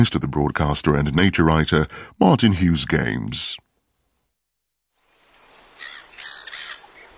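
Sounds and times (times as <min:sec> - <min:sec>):
speech: 0:00.0 - 0:03.6
blackbird calling outdoors: 0:05.7 - 0:07.1.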